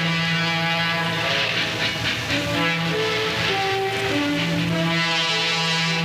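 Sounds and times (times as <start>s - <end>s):
train rolling along on rails: 0.0s - 6.0s.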